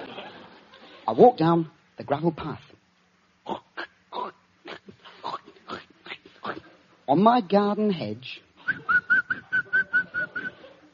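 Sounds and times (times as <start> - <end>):
speech: 1.1 - 2.7, 7.1 - 8.4
man whistling a short tune: 8.6 - 10.6.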